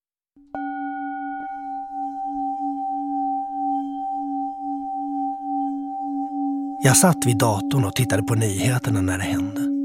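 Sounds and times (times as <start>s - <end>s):
singing bowl struck: 0.5s - 7.9s
speech: 6.8s - 9.7s.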